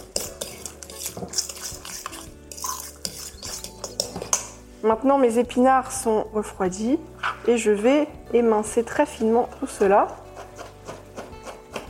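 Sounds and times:
metal spoon stirring crème fraîche into feta, scraping a dish: 0:00.0 - 0:04.6, 0:09.4 - 0:11.6
metal spoon clinking against a dish: 0:00.1 - 0:04.5
speech: 0:04.8 - 0:10.2.

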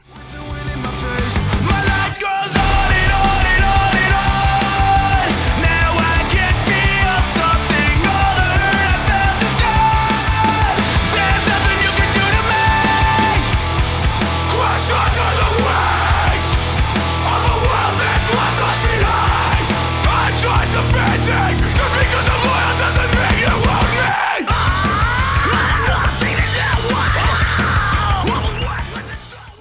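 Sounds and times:
distorted heavy guitars in a hardcore metal track: 0:00.0 - 0:29.5
driving bass in a hardcore metal track: 0:00.1 - 0:29.5
shouted vocals in a hardcore metal track: 0:00.6 - 0:13.6, 0:14.3 - 0:29.5.

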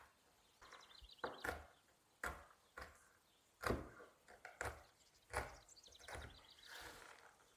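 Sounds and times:
hazelnuts being chopped by hand with a knife: 0:01.2 - 0:06.5.

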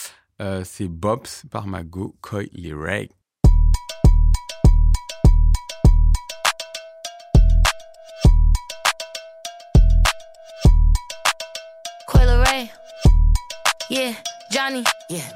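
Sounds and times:
speech: 0:00.4 - 0:03.2, 0:14.7 - 0:15.3
music track with heavy booming bass beat and bell-like melody: 0:03.4 - 0:15.3.

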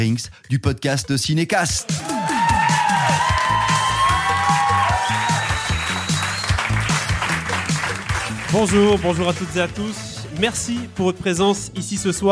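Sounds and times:
speech: 0:00.0 - 0:02.1, 0:08.5 - 0:12.2
people shouting: 0:01.9 - 0:05.6
cheers and whoops: 0:01.9 - 0:06.7
large audience applauding presenters and jury: 0:01.9 - 0:10.9
whistles: 0:03.0 - 0:07.0.

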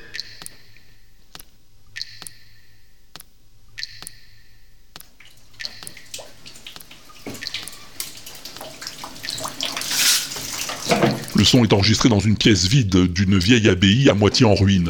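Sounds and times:
regular sharp clicks with brief tonal bursts: 0:00.0 - 0:06.0
running water in a sound installation in a half-ruined old abbey: 0:05.2 - 0:12.0
loudspeaker spinning in a sound installation in a half-ruined old abbey: 0:11.4 - 0:14.8
speech: 0:11.4 - 0:14.8.

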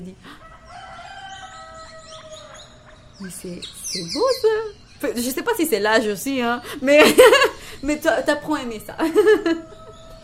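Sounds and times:
speech: 0:00.0 - 0:00.4, 0:03.2 - 0:09.6
faint bird chirps: 0:00.0 - 0:10.2
steady hiss: 0:00.0 - 0:10.2
rooster crowing: 0:00.3 - 0:03.4, 0:08.8 - 0:10.2
laughter: 0:06.6 - 0:10.2.

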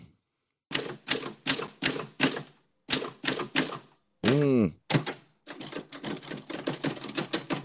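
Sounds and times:
Japy SB 961 mechanical typewriter typing: 0:00.7 - 0:07.6
person exclaiming: 0:04.2 - 0:04.8.

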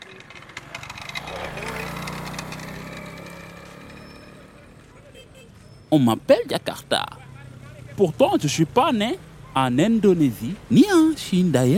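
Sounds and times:
faint clicks and rattles: 0:00.0 - 0:02.7
small motorcycle engine revving: 0:00.0 - 0:04.9
speech: 0:05.9 - 0:07.2, 0:08.0 - 0:11.7.

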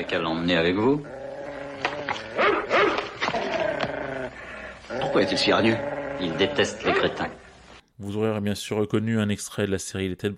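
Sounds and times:
speech: 0:00.0 - 0:01.2, 0:04.9 - 0:07.4, 0:08.0 - 0:10.3
dog growling: 0:00.7 - 0:07.4
dog barking: 0:02.4 - 0:03.1.

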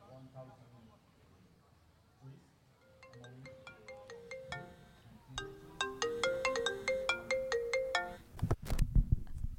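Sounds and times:
telephone ringtone with bright repeating electronic melody: 0:02.8 - 0:08.3.

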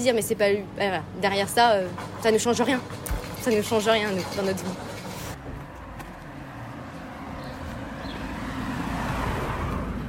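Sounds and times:
speech: 0:00.0 - 0:04.9
small postal car passing in street: 0:06.4 - 0:10.0.

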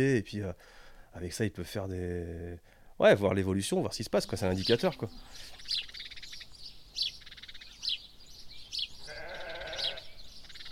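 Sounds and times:
speech: 0:00.0 - 0:05.9
birds chirping and trilling outdoors: 0:03.6 - 0:10.7
sheep bleating: 0:09.0 - 0:10.2.

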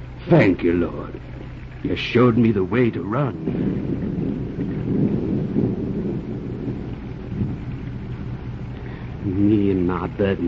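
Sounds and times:
heavy rain: 0:00.0 - 0:10.4
speech: 0:00.2 - 0:04.0, 0:09.3 - 0:10.4
low rolling thunder: 0:02.0 - 0:10.4.

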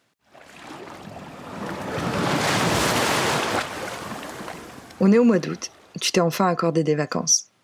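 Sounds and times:
sea waves breaking on the shore: 0:00.2 - 0:06.0
speech: 0:05.0 - 0:07.5.

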